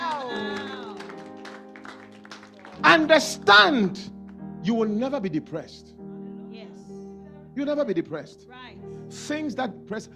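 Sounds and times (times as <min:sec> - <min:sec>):
scattered crowd clapping during a sermon: 0:00.0 - 0:03.5
speech: 0:02.8 - 0:06.0, 0:07.6 - 0:10.1.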